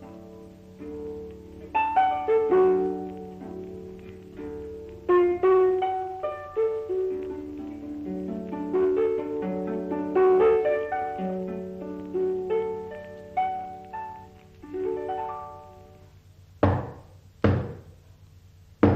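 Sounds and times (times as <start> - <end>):
plucked ringing musical notes: 0.0 - 17.8
knocking on a door: 16.6 - 17.9, 18.8 - 18.9.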